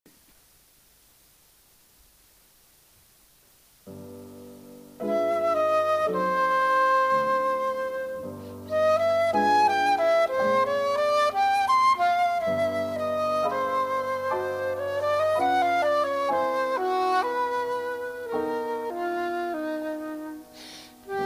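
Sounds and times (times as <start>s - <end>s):
piano: 3.8s - 21.2s
flute: 5.0s - 21.2s.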